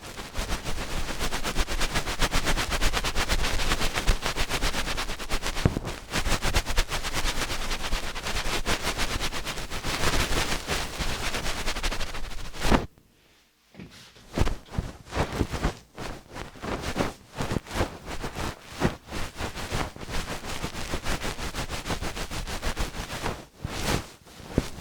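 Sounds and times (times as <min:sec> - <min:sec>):
massage rubbing strokes: 0:00.0 - 0:12.9, 0:14.3 - 0:24.7
crackling and scratching of ear cleaning: 0:00.8 - 0:12.9.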